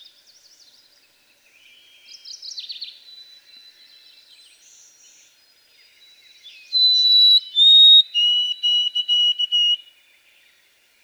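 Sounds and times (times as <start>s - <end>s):
white-throated sparrow song of pure whistles: 1.7s - 9.9s.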